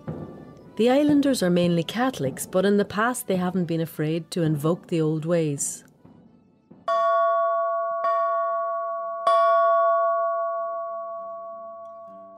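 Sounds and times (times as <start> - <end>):
speech: 0.8 - 5.9
ship's bell of a British warship ringing: 6.9 - 12.3.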